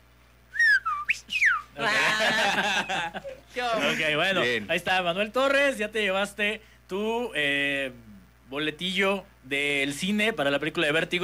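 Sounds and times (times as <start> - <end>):
descending losing whistle sound effect: 0.5 - 1.8
laughter: 1.8 - 4.7
speech: 1.8 - 11.2.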